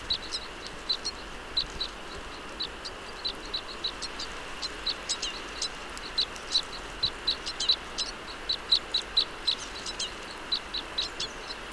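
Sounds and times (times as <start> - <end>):
low background hiss: 0.0 - 11.7
red crossbill flight calls, call type E: 0.0 - 11.7.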